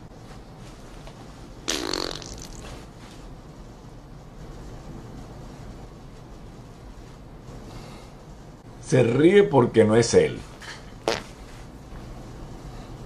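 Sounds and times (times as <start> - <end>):
loud fart: 1.6 - 2.8, 11.0 - 11.4
speech: 8.9 - 10.5.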